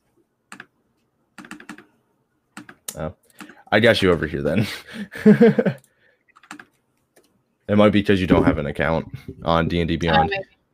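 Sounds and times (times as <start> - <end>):
typing on a computer keyboard: 0.5 - 0.7, 1.4 - 1.9, 2.6 - 4.2, 5.7 - 6.8
speech: 3.0 - 5.8, 7.7 - 10.6
laughter: 4.6 - 5.8.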